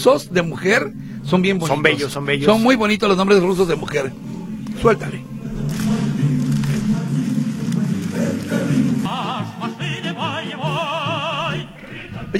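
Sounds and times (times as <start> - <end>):
speech: 0.0 - 5.3
music with dense accompaniment and vibrato melodic line: 0.0 - 11.9.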